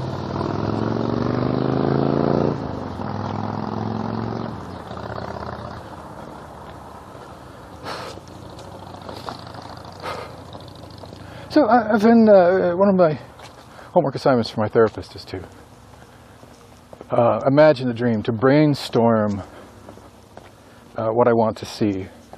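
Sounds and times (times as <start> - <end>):
car engine passing at a street intersection: 0.0 - 13.7
low traffic rumble: 0.0 - 22.3
speech: 11.6 - 13.3, 14.0 - 15.6, 17.1 - 19.5, 21.0 - 22.2.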